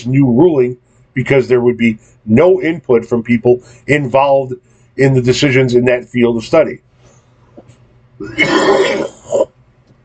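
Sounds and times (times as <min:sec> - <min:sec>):
speech: 0:00.0 - 0:06.8, 0:08.2 - 0:09.1
person coughing: 0:08.2 - 0:09.5
throat clearing: 0:08.2 - 0:09.5.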